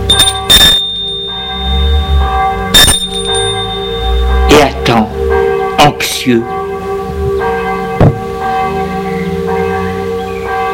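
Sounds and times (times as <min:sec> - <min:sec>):
bell ringing at a gate: 0:00.0 - 0:10.7
steady tonal background: 0:00.0 - 0:10.7
speech: 0:06.0 - 0:06.6.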